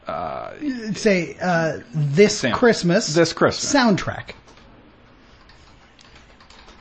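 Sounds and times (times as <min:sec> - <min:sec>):
speech: 0:00.1 - 0:04.4
two-finger typing on a computer keyboard: 0:04.3 - 0:04.7, 0:05.4 - 0:06.7.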